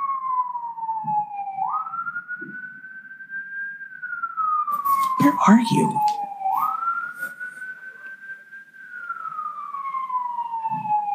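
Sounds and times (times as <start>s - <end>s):
emergency vehicle siren wailing as it passes along the street: 0.0s - 11.1s
speech: 5.2s - 6.2s.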